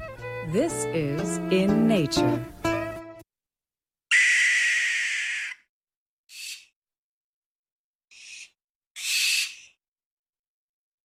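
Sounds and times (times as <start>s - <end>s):
speech: 0.6s - 2.5s
barn owl screeching: 4.1s - 5.6s, 8.2s - 9.7s.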